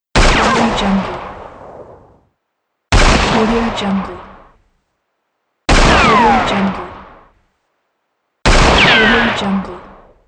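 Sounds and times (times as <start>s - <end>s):
spaghetti western gunshots: 0.1s - 2.2s, 2.9s - 4.6s, 5.7s - 7.4s, 8.4s - 10.2s.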